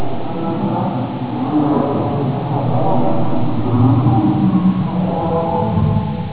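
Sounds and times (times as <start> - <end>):
scary ambience: 0.0 - 6.3.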